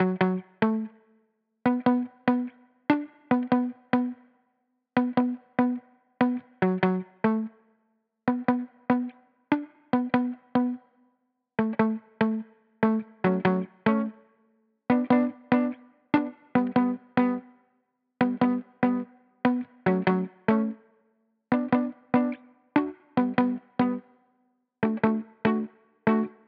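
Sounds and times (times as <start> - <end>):
muted guitar loop in D major: 0.0 - 0.9, 1.7 - 4.2, 5.0 - 7.5, 8.3 - 10.8, 11.6 - 14.2, 14.9 - 17.5, 18.2 - 20.8, 21.5 - 24.1, 24.8 - 26.4.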